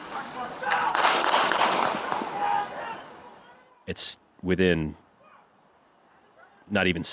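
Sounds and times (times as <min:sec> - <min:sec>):
steady hiss of noise: 0:00.0 - 0:07.1
gunshots in played security video: 0:00.9 - 0:02.3
speech: 0:03.9 - 0:05.0, 0:06.7 - 0:07.1.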